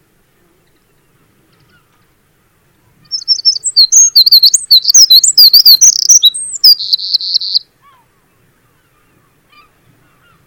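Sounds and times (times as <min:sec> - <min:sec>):
Eurasian wren singing: 0:03.0 - 0:07.7.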